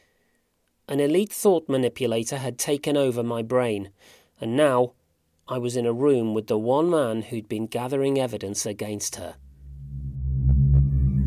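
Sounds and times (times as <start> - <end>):
speech: 0.9 - 9.4
strange steady low hum from a steel presentation orb: 9.4 - 11.2.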